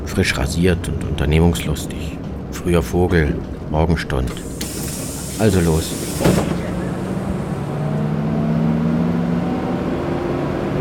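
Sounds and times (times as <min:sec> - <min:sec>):
speech: 0:00.2 - 0:04.5, 0:05.4 - 0:06.6
city bus engine droning during a ride into the city centre: 0:04.1 - 0:10.7.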